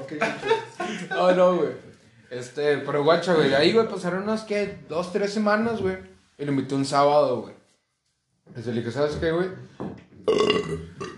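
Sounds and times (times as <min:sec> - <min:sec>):
laughter: 0:00.0 - 0:01.6
speech: 0:00.1 - 0:07.6, 0:08.5 - 0:11.0
loud drawn-out burp with guttural croaking rattle: 0:10.2 - 0:11.1.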